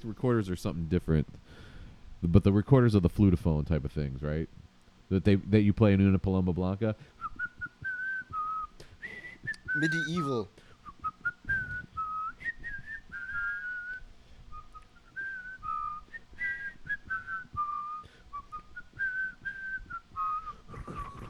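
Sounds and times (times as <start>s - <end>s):
speech: 0.0s - 7.2s, 9.8s - 10.6s
person whistling a warbling tune: 7.2s - 21.2s.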